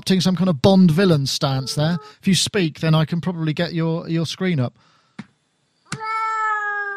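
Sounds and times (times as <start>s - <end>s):
speech: 0.0s - 4.9s
cat meowing: 5.9s - 6.9s.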